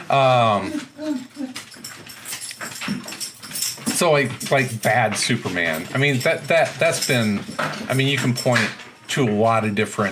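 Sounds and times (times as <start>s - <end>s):
speech: 0.1s - 1.5s, 4.0s - 10.1s
dog whining: 0.4s - 2.4s.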